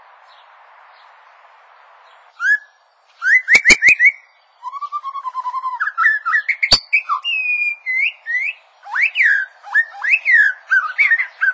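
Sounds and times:
bird song of short rising whistled notes: 2.0s - 11.5s.

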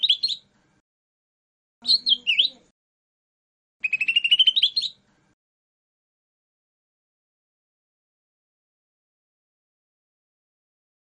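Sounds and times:
lesser green leafbird whistles and buzzy trill: 0.0s - 0.5s, 1.8s - 2.6s, 3.8s - 5.0s.

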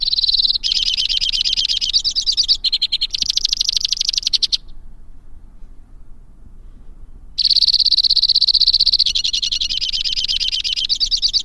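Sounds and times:
White-winged crossbill singing: 0.0s - 5.0s, 7.3s - 11.4s.

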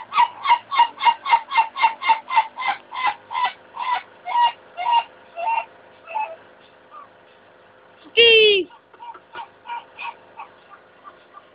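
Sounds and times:
Ayam Ketawa chicken laughing crow: 0.0s - 6.4s, 8.5s - 11.5s.

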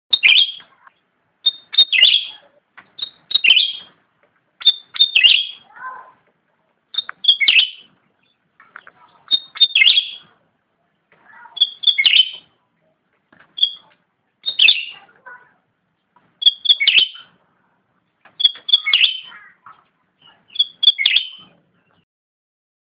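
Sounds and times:
cucak rante bird calling as a lure: 0.1s - 4.0s, 4.6s - 6.2s, 6.9s - 10.4s, 11.3s - 12.6s, 13.4s - 15.5s, 16.4s - 17.4s, 18.3s - 22.0s.

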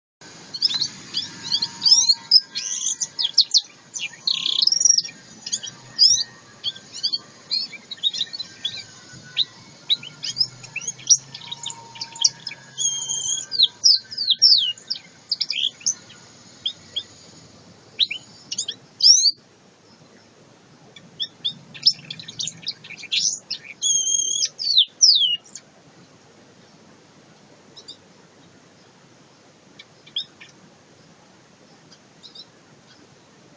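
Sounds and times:
black-headed canary: 0.4s - 19.4s, 20.8s - 25.6s, 29.8s - 30.6s.

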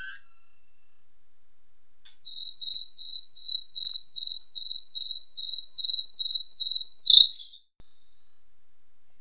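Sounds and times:
jangkrik crickets chirping: 2.2s - 7.5s
tonggeret cicada buzzing: 2.3s - 7.5s
jalak suren starling singing: 2.3s - 7.7s.

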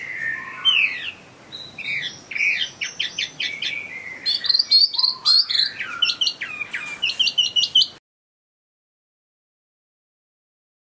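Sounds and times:
Chinese hwamei singing: 0.0s - 8.0s.

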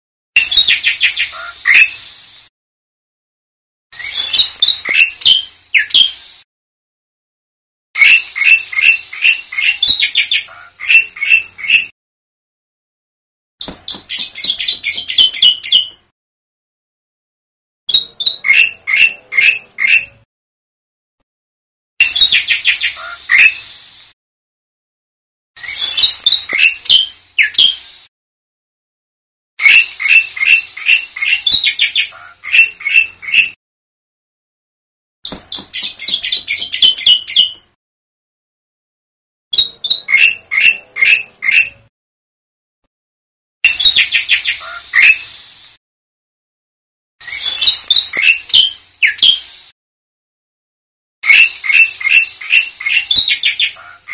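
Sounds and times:
black-winged myna chirping: 0.4s - 2.1s, 4.0s - 6.4s, 8.0s - 11.9s, 13.6s - 16.0s, 17.9s - 20.2s, 22.0s - 23.8s, 25.6s - 28.1s, 29.6s - 33.6s, 35.3s - 37.6s, 39.6s - 41.9s, 43.6s - 45.4s, 47.2s - 49.7s, 51.2s - 54.1s.

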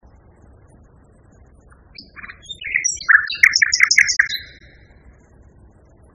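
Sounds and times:
common nightingale singing: 2.0s - 4.9s.

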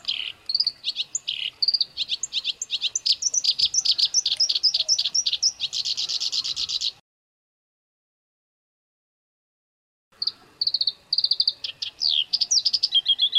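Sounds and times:
black-browed reed warbler singing: 0.0s - 7.0s, 10.2s - 13.3s.

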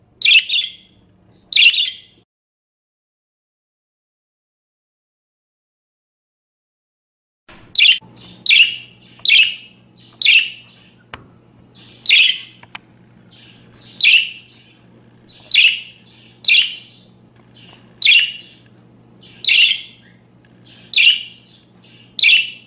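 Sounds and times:
parakeet giving sharp calls: 0.2s - 2.2s, 7.8s - 11.1s, 11.7s - 12.6s, 13.2s - 22.6s.

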